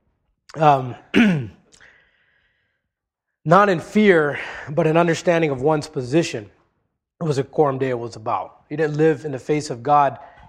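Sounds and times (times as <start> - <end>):
speech: 0.5 - 1.6, 3.4 - 6.6, 7.2 - 10.3
throat clearing and coughing: 0.5 - 1.9.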